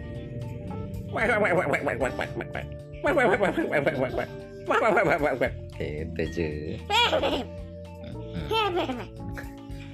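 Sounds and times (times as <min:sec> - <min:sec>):
speech: 0:01.2 - 0:09.5
person making quacky chuckling vocal sounds imitating a duck laughing: 0:06.9 - 0:09.5.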